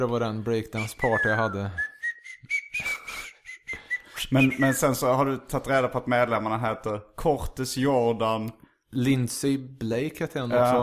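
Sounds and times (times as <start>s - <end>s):
speech: 0.0s - 1.9s, 4.2s - 10.8s
bright catchy whistled melody: 0.8s - 5.0s.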